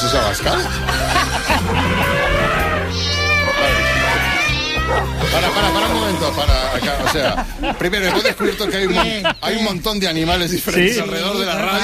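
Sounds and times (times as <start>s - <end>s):
speech: 0.0s - 2.3s, 4.9s - 11.8s
laughter: 0.0s - 9.8s, 10.6s - 11.8s
cat meowing: 1.5s - 6.7s.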